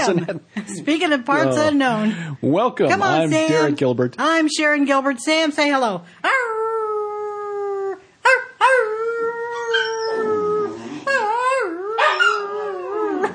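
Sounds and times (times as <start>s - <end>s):
speech: 0.0s - 6.5s
dog howling: 6.3s - 13.3s.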